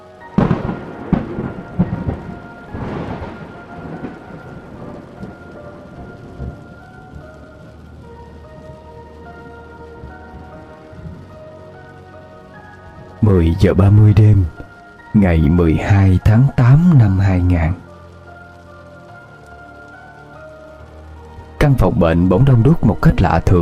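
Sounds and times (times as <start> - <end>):
nighttime rainfall pattering on surfaces: 0.0 - 23.6
nighttime thunder cracks and rumbles: 0.3 - 23.6
speech: 13.3 - 14.6, 15.2 - 17.8, 21.6 - 23.6.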